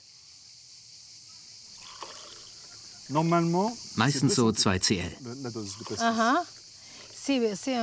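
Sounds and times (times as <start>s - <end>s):
steady hiss: 0.0s - 7.8s
pastis being poured into a glass: 1.7s - 2.8s, 5.6s - 7.2s
speech: 3.1s - 6.6s, 7.2s - 7.8s.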